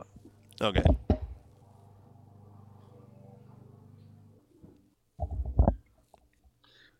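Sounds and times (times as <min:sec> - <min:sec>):
lawn mower engine droning outside: 0:00.2 - 0:04.8
speech: 0:00.6 - 0:01.0
knocks and bumps: 0:00.7 - 0:01.5, 0:04.6 - 0:05.9.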